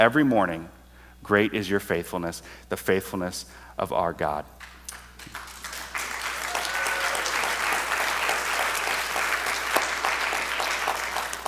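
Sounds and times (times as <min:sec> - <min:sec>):
speech: 0:00.0 - 0:04.7
large church audience applauding: 0:04.6 - 0:11.4.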